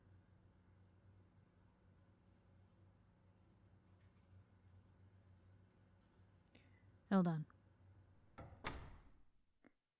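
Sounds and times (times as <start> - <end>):
speech: 7.1 - 7.5
door swinging shut with latching thud: 8.3 - 9.3.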